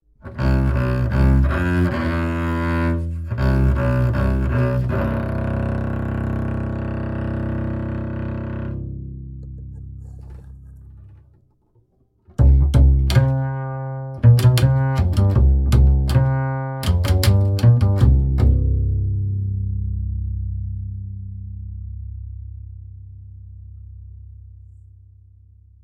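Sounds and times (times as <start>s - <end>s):
upright bass: 0.2s - 11.4s, 12.3s - 25.8s.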